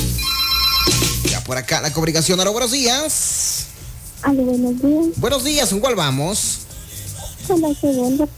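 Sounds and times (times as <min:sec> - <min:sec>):
melodic electronic telephone ringtone after a number is dialed: 0:00.2 - 0:01.3
speech: 0:01.5 - 0:03.6, 0:04.2 - 0:06.7, 0:07.5 - 0:08.3.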